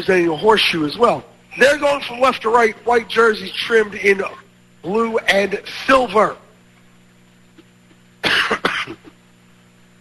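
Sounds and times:
speech: 0.0 - 6.4
short rasping throat clear from an ice hockey game commentator: 7.6 - 9.2
harsh cough from an ice hockey game commentator: 8.2 - 9.2.

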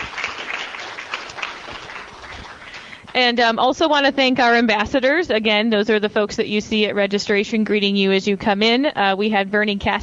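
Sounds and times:
breakfast crowd applause: 0.0 - 3.2
speech: 3.2 - 10.0.

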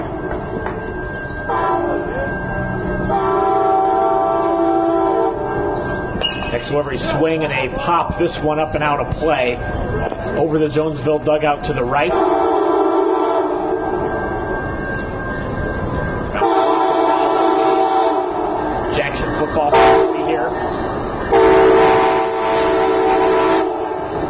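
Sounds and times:
loud passenger train rumbling past: 0.0 - 24.2
passenger train long blaring horn blasts: 1.5 - 2.4, 3.0 - 5.8, 12.0 - 13.8, 16.4 - 18.6, 19.7 - 20.3, 21.3 - 24.1
speech: 6.6 - 12.5.

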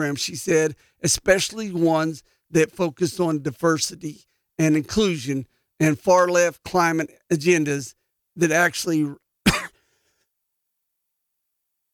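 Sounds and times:
speech: 0.0 - 9.2
person coughing: 9.4 - 9.9.

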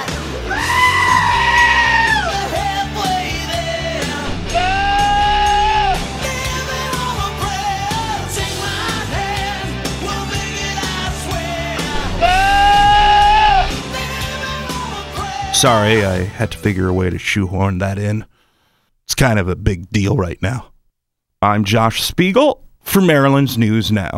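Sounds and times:
full-band rock music with drums and guitars: 0.0 - 16.8
goats screaming: 0.4 - 2.5, 4.4 - 6.1, 12.1 - 13.8
speech: 15.6 - 18.3, 19.2 - 20.7, 21.4 - 24.1.

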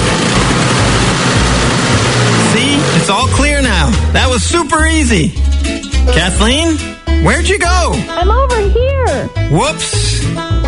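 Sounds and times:
new snow blower clearing a driveway: 0.0 - 5.2
speech: 3.1 - 10.6.

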